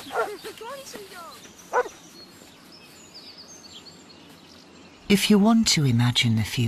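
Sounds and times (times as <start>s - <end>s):
dog barking: 0.0s - 0.4s, 1.7s - 1.9s
speech: 0.5s - 2.1s, 5.1s - 6.6s.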